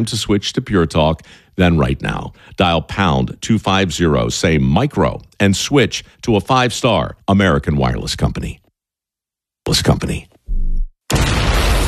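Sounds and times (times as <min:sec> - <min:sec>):
speech: 0:00.0 - 0:08.6, 0:09.6 - 0:10.3
fireworks explosion boom: 0:11.1 - 0:11.8.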